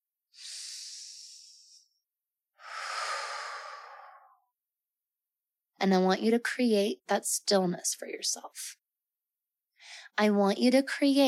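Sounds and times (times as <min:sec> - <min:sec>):
slow deep breathing: 0:00.4 - 0:02.0, 0:02.6 - 0:04.4
speech: 0:05.8 - 0:08.8, 0:09.9 - 0:11.2.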